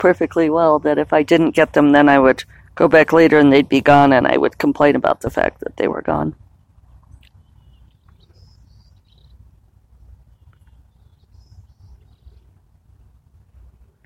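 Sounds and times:
speech: 0.0s - 6.4s
steady low rumble of outdoor noise: 0.0s - 14.0s
high birdsong from a pair of nesting birds: 6.4s - 13.2s.

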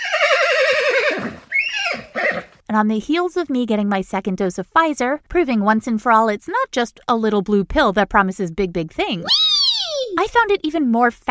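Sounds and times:
horse neighing: 0.0s - 2.6s
speech: 2.7s - 9.4s, 10.2s - 11.2s.

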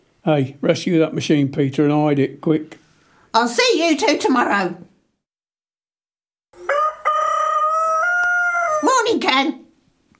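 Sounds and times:
speech: 0.2s - 4.9s, 9.0s - 9.6s
cockerel crowing: 6.6s - 8.9s.

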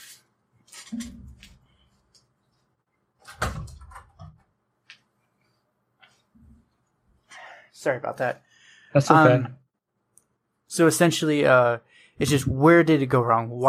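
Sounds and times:
door opening and closing: 0.8s - 1.6s, 3.2s - 4.4s
speech: 0.9s - 1.2s, 7.8s - 9.6s, 10.7s - 13.6s.

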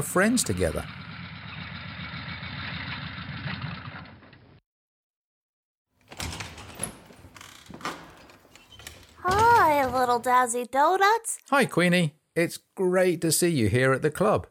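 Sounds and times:
speech: 0.0s - 1.0s, 10.2s - 14.4s
arriving motorbike engine idling: 0.4s - 4.0s.

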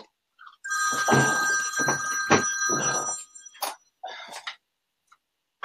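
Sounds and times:
phone ringing upstairs with trilling electronic tone: 0.6s - 3.8s.

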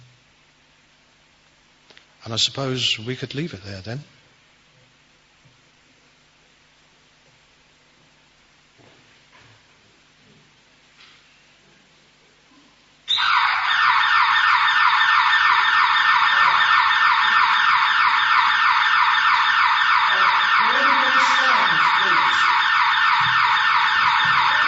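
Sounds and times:
speech: 2.2s - 4.2s
alarm siren with rapid warbling tone: 13.1s - 24.6s.

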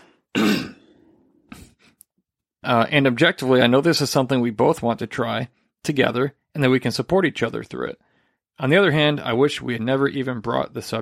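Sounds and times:
person clearing throat: 0.3s - 1.0s
speech: 2.6s - 11.0s.

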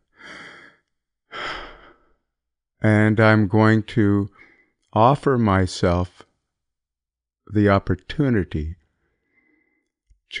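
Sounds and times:
deep breath in and out: 0.0s - 2.3s, 4.3s - 4.8s, 9.0s - 9.9s
speech: 2.8s - 6.2s, 7.5s - 8.8s.

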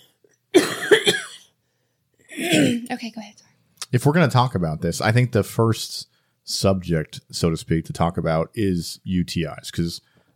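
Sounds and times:
harsh rasping coughs: 0.6s - 1.6s, 2.3s - 2.9s
speech: 2.4s - 10.3s.

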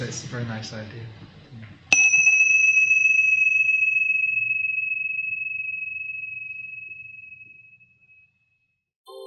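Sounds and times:
speech: 0.0s - 1.8s
bell rung to close the session: 2.0s - 8.2s.

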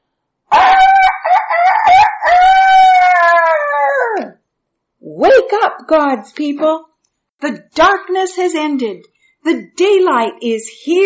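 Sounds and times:
rooster crowing: 0.5s - 4.4s
speech: 5.6s - 11.0s.

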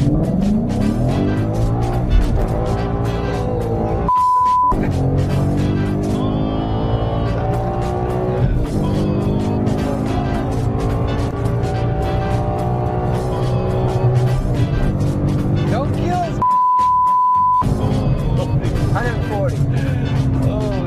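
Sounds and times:
Mustang race car engine revving: 0.0s - 4.1s, 4.7s - 16.4s, 17.6s - 20.8s
high beep: 4.1s - 4.8s, 16.4s - 17.6s.

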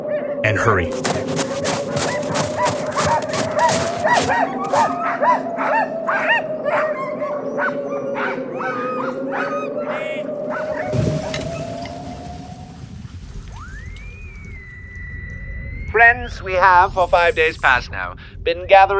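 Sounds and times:
speech: 0.4s - 11.0s, 16.0s - 18.9s
pack of sled dogs barking and yipping: 1.0s - 12.2s.

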